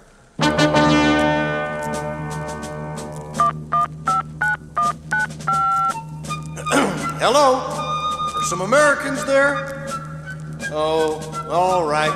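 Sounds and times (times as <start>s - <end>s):
steady telephone tone: 0.4s - 12.1s
touch-tone beeps of a telephone number being dialed: 3.4s - 6.1s
speech: 7.2s - 7.7s, 8.4s - 9.8s, 10.7s - 12.1s.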